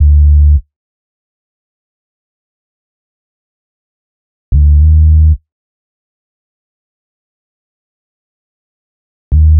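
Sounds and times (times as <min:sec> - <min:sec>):
exotica hip hop bass line in D minor: 0:00.0 - 0:00.6, 0:04.5 - 0:05.4, 0:09.3 - 0:09.5.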